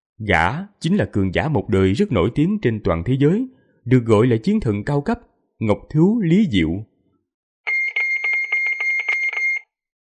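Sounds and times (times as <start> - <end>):
speech: 0.2 - 6.9
harsh high-pitched electronic alarm ringing from a wristwatch: 7.7 - 9.8.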